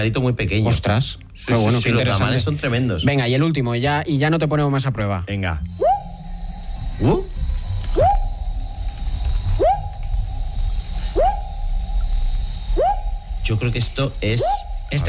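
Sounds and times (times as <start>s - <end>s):
speech: 0.0s - 5.9s, 7.0s - 7.3s, 13.6s - 15.0s
constant low drone and rumble: 5.6s - 15.0s
frog calling: 5.7s - 15.0s.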